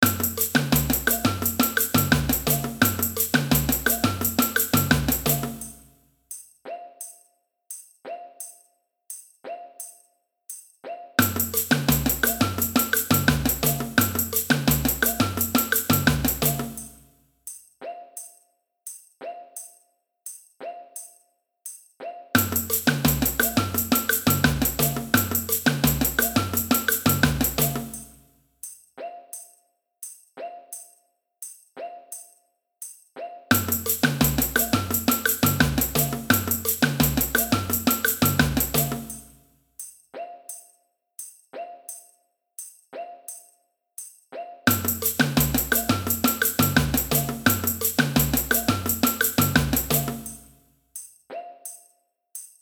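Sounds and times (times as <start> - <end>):
samba band playing: 0.0 - 5.8, 11.2 - 17.0, 22.4 - 28.1, 33.5 - 39.3, 44.7 - 50.5
cuica in a samba band: 0.0 - 6.0, 10.8 - 17.1, 22.0 - 28.2, 33.2 - 39.4, 44.3 - 51.8.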